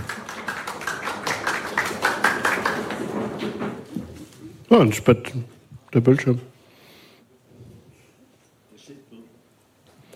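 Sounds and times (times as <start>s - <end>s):
audience applauding: 0.0s - 4.3s
speech: 4.7s - 6.5s.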